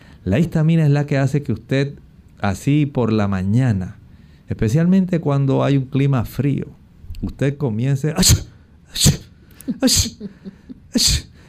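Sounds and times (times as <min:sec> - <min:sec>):
speech: 0:00.2 - 0:11.3
person sneezing: 0:08.2 - 0:11.4.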